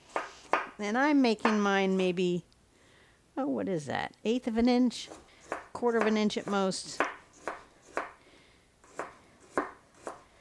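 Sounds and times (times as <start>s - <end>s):
ceramic knife chopping a quartered carrot into small pieces: 0.1s - 0.8s, 5.0s - 8.2s, 8.8s - 10.3s
speech: 0.8s - 2.5s, 3.4s - 5.2s, 5.8s - 7.1s.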